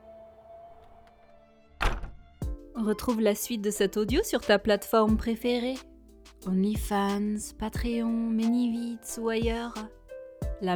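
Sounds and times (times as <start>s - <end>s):
door slamming shut: 1.8s - 2.4s
speech: 2.8s - 10.0s.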